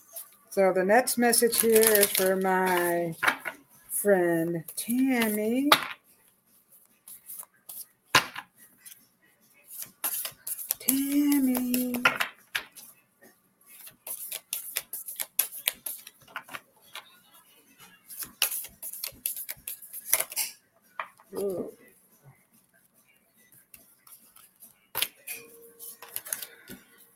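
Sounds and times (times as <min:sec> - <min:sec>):
speech: 0:00.5 - 0:03.4, 0:04.0 - 0:05.9
playing cards being shuffled and scattering: 0:01.3 - 0:03.5, 0:04.8 - 0:06.0, 0:09.7 - 0:12.8, 0:13.7 - 0:17.0, 0:18.1 - 0:20.4, 0:24.0 - 0:25.2, 0:25.8 - 0:26.8.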